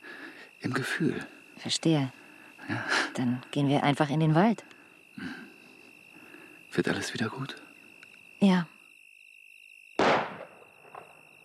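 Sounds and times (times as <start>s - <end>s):
speech: 0.6s - 5.4s, 6.8s - 7.6s, 8.4s - 8.8s
single gunshot from a house: 10.0s - 11.2s.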